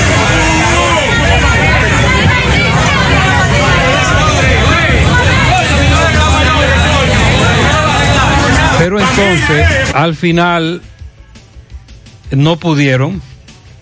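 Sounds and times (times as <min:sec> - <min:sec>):
dense crowd shouting and talking at a cemetery: 0:00.0 - 0:10.0
low rumble of vehicles: 0:00.0 - 0:12.2
speech: 0:09.2 - 0:10.9, 0:12.3 - 0:13.3.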